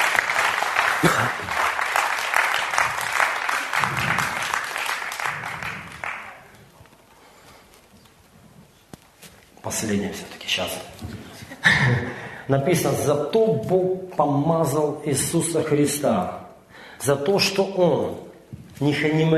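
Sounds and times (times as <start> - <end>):
crowd applauding: 0.0 - 6.7
speech: 9.8 - 16.4, 17.0 - 19.3.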